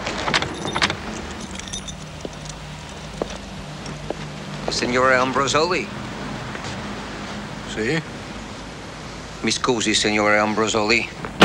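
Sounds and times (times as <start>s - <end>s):
keys jingling: 0.2s - 4.0s
car idling: 0.3s - 11.4s
speech: 4.8s - 6.0s, 7.7s - 8.1s, 9.4s - 11.2s.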